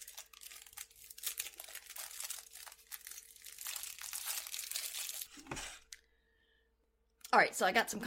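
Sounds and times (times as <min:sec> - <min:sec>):
plastic wrapping on trading card packs crinkling and tearing: 0:00.0 - 0:06.0
speech: 0:07.4 - 0:08.0.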